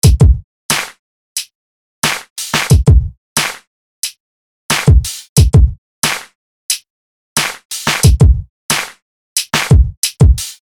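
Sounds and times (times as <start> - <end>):
pop drum kit: 0.0 - 0.9, 2.0 - 3.6, 4.7 - 6.2, 7.4 - 10.6.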